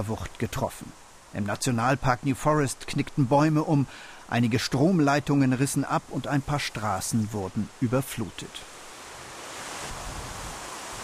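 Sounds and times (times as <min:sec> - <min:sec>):
speech: 0:00.0 - 0:08.7
strong wind blowing in woodland after a storm: 0:09.6 - 0:11.0.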